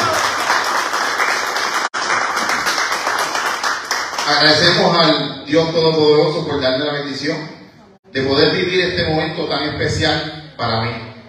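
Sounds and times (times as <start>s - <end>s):
crowd applauding: 0.0s - 4.9s
speech: 4.3s - 11.1s.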